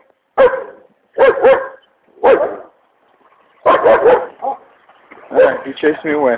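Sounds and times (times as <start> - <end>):
dog barking: 0.4 - 2.7, 3.6 - 4.6, 5.3 - 5.7
speech: 5.4 - 6.3.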